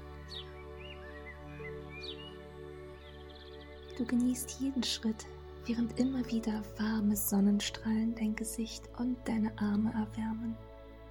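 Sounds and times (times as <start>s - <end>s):
birds chirping around a path on a sunny day: 0.2s - 5.2s
speech: 4.0s - 10.7s.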